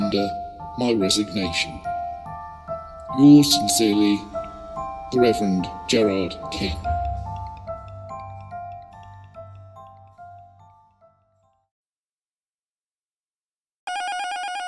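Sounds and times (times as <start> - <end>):
speech: 0.1 - 1.9, 3.2 - 4.3, 5.1 - 6.9
old-style telephone bell ringing for an incoming call: 13.9 - 14.6.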